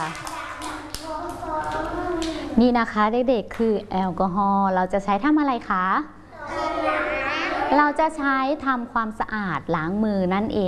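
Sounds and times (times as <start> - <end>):
children clapping hands in a classroom: 0.0 - 2.4
young voice: 0.0 - 2.6, 6.3 - 7.9
speech: 2.6 - 6.2, 7.7 - 10.6.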